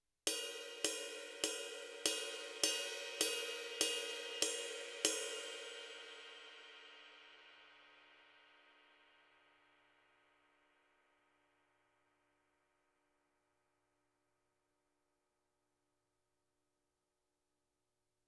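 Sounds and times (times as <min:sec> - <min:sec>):
cymbals: 0:00.3 - 0:08.8.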